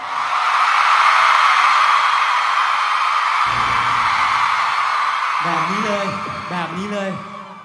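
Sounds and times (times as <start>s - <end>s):
large crowd screaming at high pitch: 0.0s - 7.6s
low rumble: 3.5s - 5.0s
speech: 5.7s - 7.3s.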